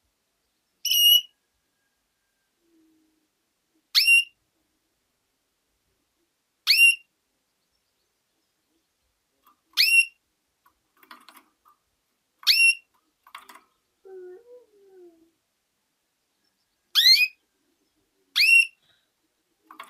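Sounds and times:
female canary calling with rising whistled notes: 0.8s - 1.3s, 9.8s - 10.2s, 12.5s - 12.9s, 16.9s - 17.4s, 18.4s - 18.8s.

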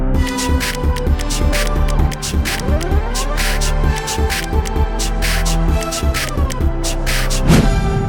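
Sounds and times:
intro music: 0.2s - 8.0s.

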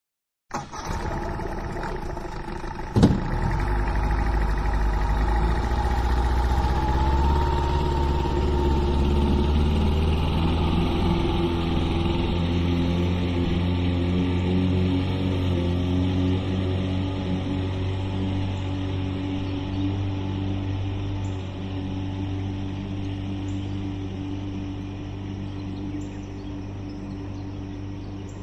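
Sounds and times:
motor boat engine: 0.6s - 28.4s.

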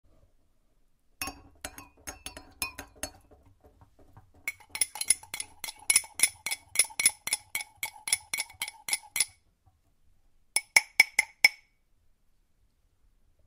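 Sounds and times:
spoon stirring cup: 1.2s - 9.4s, 10.6s - 11.6s.

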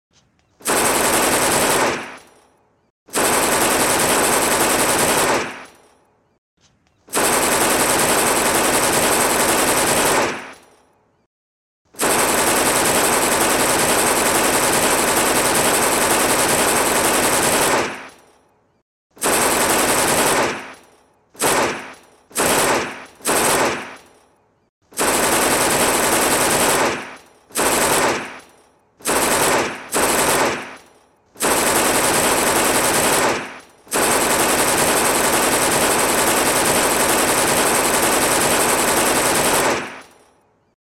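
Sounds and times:
Thompson submachine gun firing: 0.6s - 2.3s, 3.1s - 5.8s, 7.1s - 10.6s, 11.9s - 18.2s, 19.2s - 24.2s, 24.9s - 40.4s.

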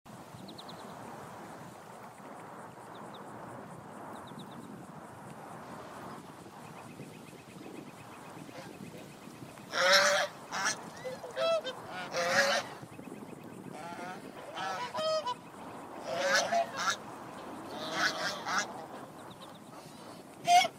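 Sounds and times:
swans calling: 9.7s - 12.8s, 13.7s - 17.0s, 17.7s - 20.7s.

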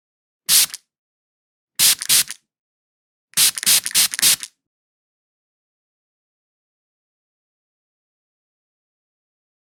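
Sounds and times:
perfume spraying: 0.5s - 0.8s, 1.8s - 2.4s, 3.4s - 4.5s.

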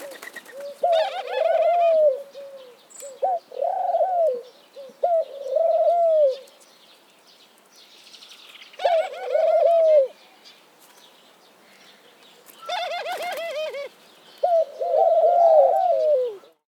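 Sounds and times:
dove calling in drawn-out coos: 0.0s - 6.5s, 8.8s - 10.2s, 12.6s - 16.6s.

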